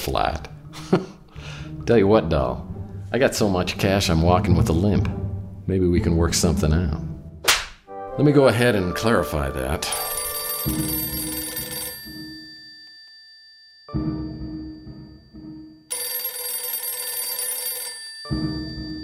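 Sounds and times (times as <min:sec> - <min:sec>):
speech: 0:00.0 - 0:01.2, 0:01.9 - 0:07.1, 0:08.2 - 0:11.2
old-fashioned telephone bell ringing: 0:09.8 - 0:19.0.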